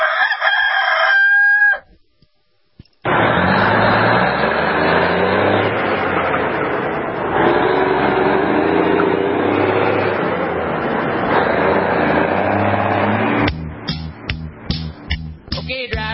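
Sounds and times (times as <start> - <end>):
rooster crowing: 0.0 - 1.9
car engine cruising: 3.0 - 16.1.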